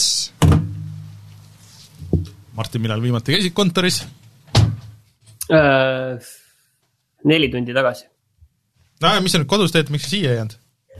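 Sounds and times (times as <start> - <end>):
speech: 2.6 - 4.2, 5.5 - 6.4, 7.2 - 8.1, 9.0 - 10.6
office window shutting with a solid thunk: 4.5 - 4.9.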